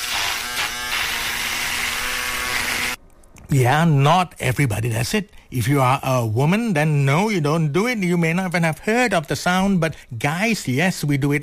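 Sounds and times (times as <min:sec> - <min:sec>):
electric shaver buzzing during shaving: 0:00.0 - 0:03.0
speech: 0:03.5 - 0:11.4.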